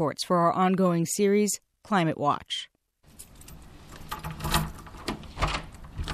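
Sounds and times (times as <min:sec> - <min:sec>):
speech: 0:00.0 - 0:02.7
townhome door being locked: 0:03.4 - 0:06.1.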